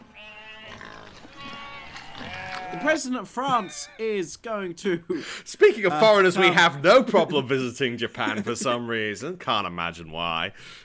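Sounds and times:
pigs squealing with loud high-pitched cries: 0.0s - 4.2s
speech: 2.7s - 10.8s
laughter: 5.9s - 9.1s.

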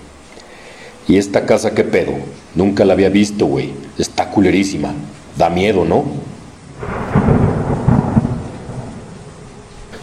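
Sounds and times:
steady rain: 0.0s - 10.0s
speech: 1.1s - 7.0s
thunder rumbling: 6.2s - 10.0s.

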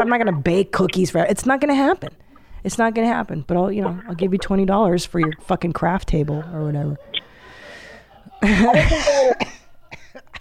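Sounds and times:
speech: 0.0s - 7.1s, 8.4s - 9.6s
small mouth noises: 0.0s - 9.4s
laughter: 6.3s - 10.3s
cough into microphone: 8.6s - 10.3s.

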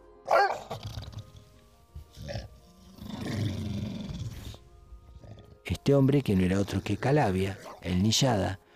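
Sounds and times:
dog barking furiously: 0.3s - 0.8s
dog growling: 0.4s - 5.7s, 6.4s - 7.9s
speech: 5.9s - 8.6s.

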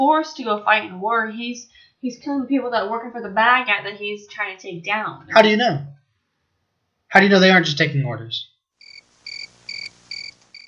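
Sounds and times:
speech: 0.0s - 6.0s, 7.1s - 8.5s
crickets chirping: 8.8s - 10.6s.

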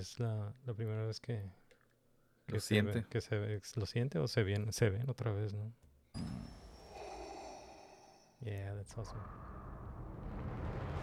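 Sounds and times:
speech: 0.0s - 1.6s, 2.5s - 6.6s, 8.4s - 9.8s
mechanical respirator breathing through a mask: 6.2s - 8.4s.

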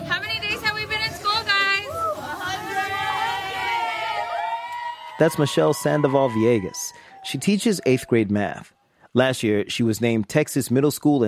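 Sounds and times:
students and teachers chattering and cheering in a middle school hallway in El Paso Texas: 0.0s - 8.8s
speech: 5.2s - 11.2s.

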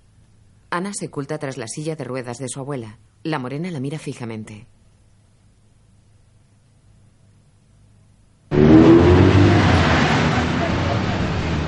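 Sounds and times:
speech: 0.7s - 4.8s
cars driving both ways along a long avenue beside a large house's garden: 8.5s - 11.6s.

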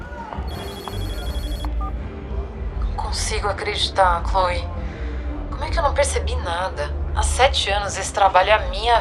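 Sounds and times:
electronic telephone ringtone warbling with an incoming call: 0.5s - 1.7s
speech: 3.1s - 4.7s, 5.6s - 8.9s.

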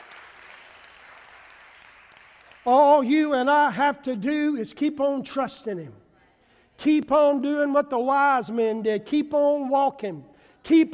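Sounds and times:
audience applause with many hands clapping: 0.0s - 2.7s
speech: 2.6s - 6.0s, 6.8s - 10.9s.

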